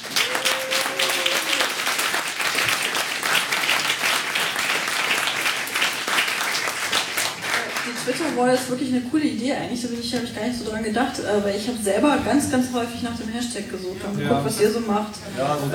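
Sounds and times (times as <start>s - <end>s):
audience applause: 0.0s - 8.8s
speech: 8.4s - 15.7s.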